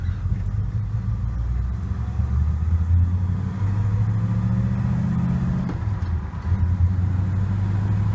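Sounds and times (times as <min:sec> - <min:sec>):
car engine revving through four-speed manual gear changes: 0:00.4 - 0:08.1.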